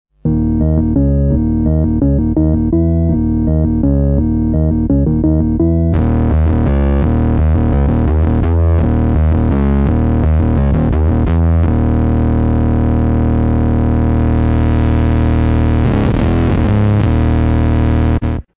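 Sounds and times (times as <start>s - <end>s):
bass organ: 0.2s - 18.5s.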